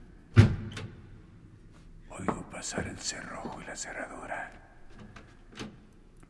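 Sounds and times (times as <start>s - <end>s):
door thudding: 0.3s - 1.0s
speech: 2.2s - 5.7s.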